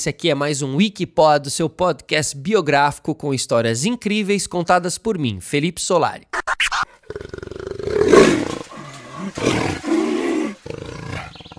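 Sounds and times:
speech: 0:00.0 - 0:08.6, 0:09.2 - 0:10.1
jaguar roaring: 0:07.0 - 0:11.5.

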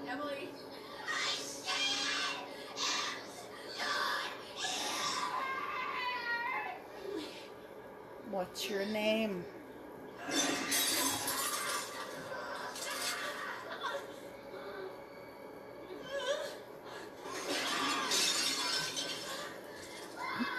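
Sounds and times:
busy noisy background: 0:00.0 - 0:20.5
speech: 0:08.4 - 0:09.6
glass shattering on a hard floor: 0:10.3 - 0:11.8, 0:17.5 - 0:19.4.

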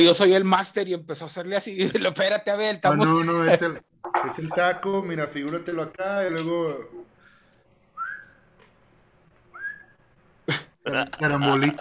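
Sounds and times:
speech: 0:00.0 - 0:07.1, 0:10.5 - 0:11.7
person whistling upward-sliding notes: 0:08.0 - 0:08.4, 0:09.5 - 0:09.9
laughter: 0:10.5 - 0:11.7.

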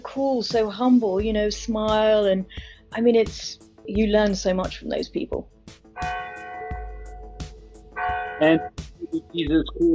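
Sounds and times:
speech: 0:00.2 - 0:05.6, 0:08.4 - 0:09.9
church bells ringing over a town: 0:06.0 - 0:07.4, 0:08.0 - 0:08.7.

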